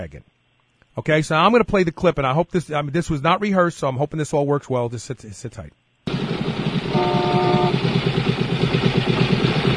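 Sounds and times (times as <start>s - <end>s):
speech: 0.0s - 0.4s, 1.0s - 5.8s
Harley motorcycle engine idling at a traffic light: 6.1s - 9.7s
short higher-pitched whine: 6.1s - 9.7s.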